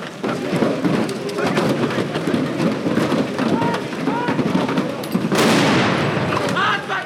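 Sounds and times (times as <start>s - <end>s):
clatter: 0.0s - 5.6s
crowd shouting: 3.4s - 4.8s, 6.2s - 7.0s
gunshots during a riot-control exercise: 5.3s - 7.0s.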